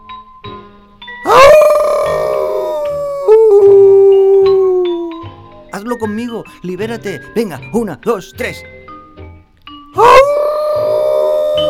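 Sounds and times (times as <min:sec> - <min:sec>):
human voice imitating a lone wolf howling: 0:01.3 - 0:05.3, 0:10.0 - 0:11.6
speech: 0:06.4 - 0:08.7.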